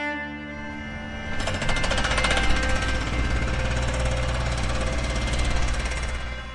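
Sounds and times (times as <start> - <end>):
construction machinery droning: 0.2 - 6.5
jackhammer drilling on a construction site: 0.9 - 6.5.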